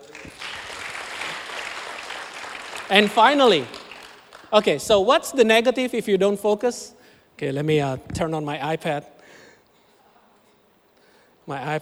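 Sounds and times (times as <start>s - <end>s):
audience applause: 0.0s - 4.8s
speech: 2.9s - 3.8s, 4.5s - 9.2s, 11.5s - 11.8s.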